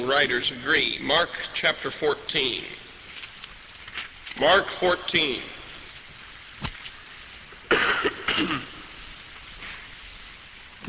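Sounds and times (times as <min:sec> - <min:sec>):
speech: 0:00.0 - 0:02.8, 0:04.4 - 0:05.6, 0:08.4 - 0:08.7
quiet hissy background: 0:00.0 - 0:10.8
person coughing harshly: 0:07.7 - 0:08.8
rough throat clearing: 0:07.7 - 0:08.8.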